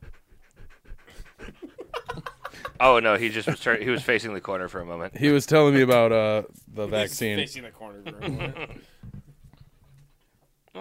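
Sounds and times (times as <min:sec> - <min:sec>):
dog panting: 0:00.0 - 0:02.9
laughter: 0:01.4 - 0:04.3, 0:08.0 - 0:08.9
speech: 0:02.8 - 0:08.9.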